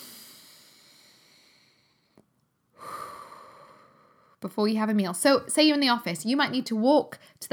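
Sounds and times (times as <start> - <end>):
deep breaths drawn in through the nose: 0.0 - 2.2, 2.8 - 4.4
speech: 4.4 - 7.5.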